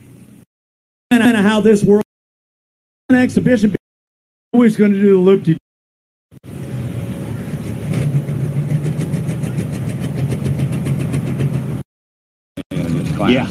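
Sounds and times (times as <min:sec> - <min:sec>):
speech: 0:01.2 - 0:02.1, 0:03.1 - 0:03.8, 0:04.5 - 0:05.6, 0:13.2 - 0:13.4
diesel tractor engine running: 0:06.4 - 0:11.8.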